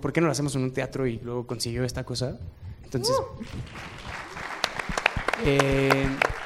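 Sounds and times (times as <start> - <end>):
speech: 0.0 - 4.2, 5.4 - 6.4
audience applause in a theatre: 3.4 - 6.4.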